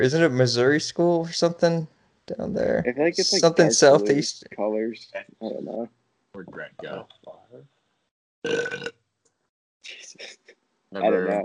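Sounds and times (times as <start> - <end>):
speech: 0.0 - 7.7, 8.4 - 9.0, 9.9 - 11.4
loud drawn-out belching: 8.4 - 9.0.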